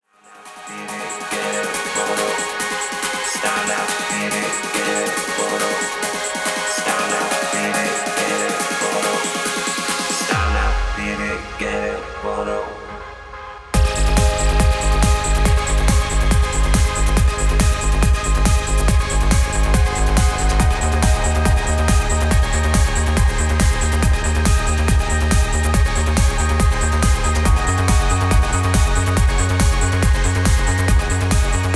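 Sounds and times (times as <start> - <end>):
classic old school trance music: 0.2 - 31.7.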